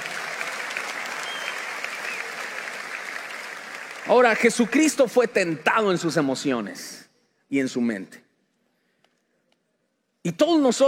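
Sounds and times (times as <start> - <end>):
large crowd applauding loudly: 0.0 - 6.1
speech: 4.1 - 8.2, 10.2 - 10.8.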